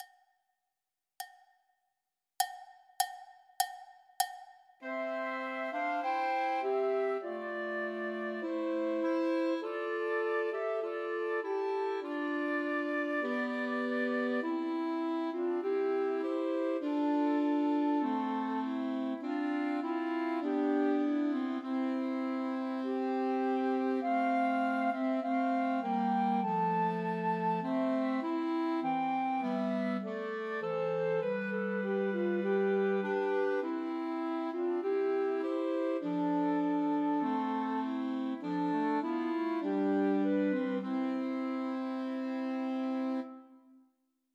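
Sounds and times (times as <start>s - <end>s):
Christmas trio for flute, clarinet and alto saxophone: 4.9s - 43.6s.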